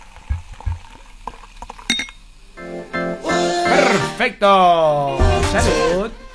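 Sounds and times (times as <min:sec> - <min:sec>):
Coca-Cola poured from a glass bottle gurgling: 0:00.0 - 0:02.6
glass bottle clinks: 0:01.9 - 0:02.2
speech: 0:03.9 - 0:06.2.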